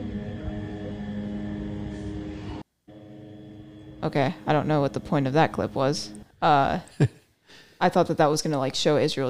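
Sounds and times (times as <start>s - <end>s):
military drone engine buzzing overhead: 0.0s - 6.4s
speech: 4.0s - 9.2s.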